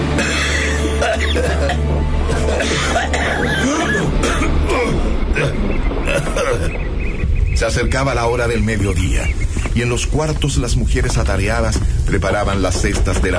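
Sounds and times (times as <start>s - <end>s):
person coughing with short hollow chesty coughs: 0.2s - 6.7s
speech: 7.6s - 13.3s.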